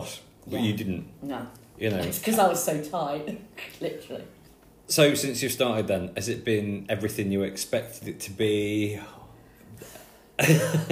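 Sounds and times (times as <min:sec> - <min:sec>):
speech: 0:00.1 - 0:09.2, 0:09.8 - 0:10.9
person coughing: 0:10.4 - 0:10.9.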